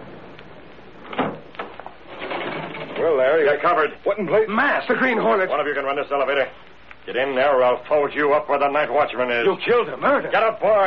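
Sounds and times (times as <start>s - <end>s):
front door opening or closing: 1.0s - 3.1s
speech: 3.1s - 10.8s.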